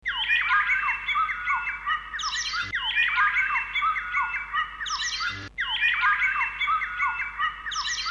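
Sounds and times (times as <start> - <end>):
birds giving overlapping squeaky downslurred calls: 0.1 - 8.1.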